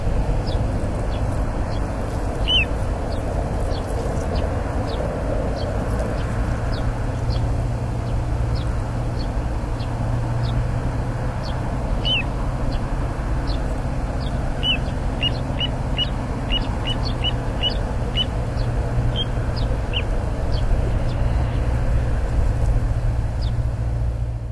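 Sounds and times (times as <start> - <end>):
low rumbling background noise: 0.0 - 24.4
little ringed plover calls: 0.4 - 5.0, 11.3 - 21.6.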